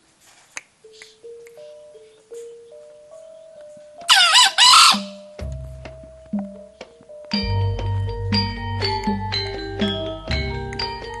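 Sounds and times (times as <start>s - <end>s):
steady sustained musical tones stepping upward: 0.8s - 10.7s
female junglefowl call from Java: 4.1s - 5.3s.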